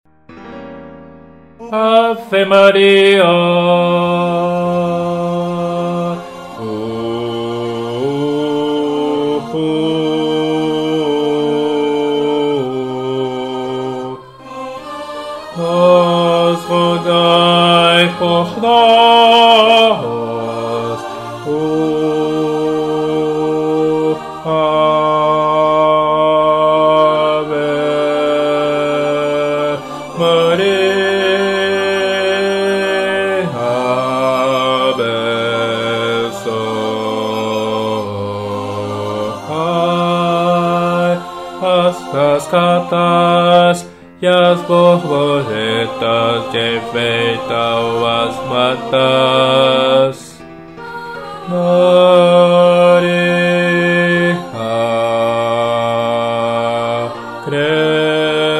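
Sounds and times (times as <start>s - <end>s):
bass singing a hymn: 1.6s - 58.5s.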